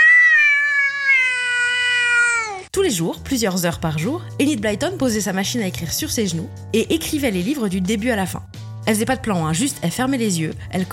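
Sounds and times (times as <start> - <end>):
cat meowing: 0.0 - 2.7
speech: 2.8 - 10.9.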